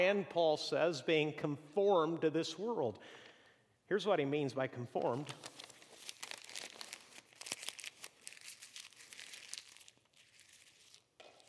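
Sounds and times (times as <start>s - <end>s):
speech: 0.0s - 3.3s, 3.9s - 5.5s
sheet of paper being crumpled by hand: 5.0s - 11.4s.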